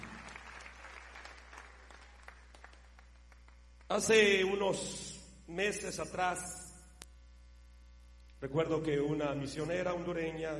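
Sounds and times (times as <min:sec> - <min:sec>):
audience applause: 0:00.0 - 0:03.5
speech: 0:03.9 - 0:06.6, 0:08.4 - 0:10.5.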